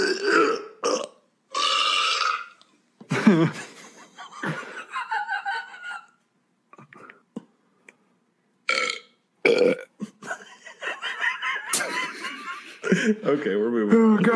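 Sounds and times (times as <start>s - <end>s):
loud burps in a burping contest: 0.0s - 2.7s, 8.7s - 10.0s
laughter and chuckling: 3.1s - 6.2s, 10.0s - 14.3s
speech: 3.3s - 3.7s, 13.1s - 14.3s.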